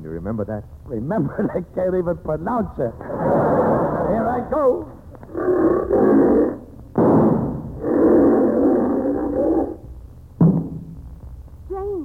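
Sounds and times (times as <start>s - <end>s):
speech: 0.1s - 3.4s, 4.4s - 5.0s
lion roaring: 3.0s - 4.5s, 5.3s - 10.0s
gunshot fired at a lion during a hunt: 7.0s - 7.8s.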